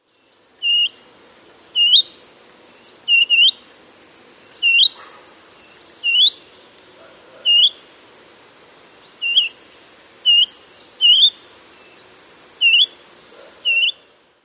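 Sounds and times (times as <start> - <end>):
willow warbler alarm call: 0.6 - 1.0, 1.8 - 2.2, 2.8 - 3.6, 4.5 - 6.6, 7.4 - 7.8, 9.0 - 9.6, 10.2 - 13.0, 13.6 - 14.1.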